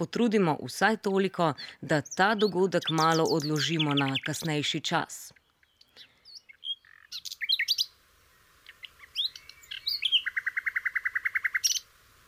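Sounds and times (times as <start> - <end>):
speech: 0.0 - 5.4
birds chirping and singing outdoors: 1.9 - 7.9, 8.6 - 11.8.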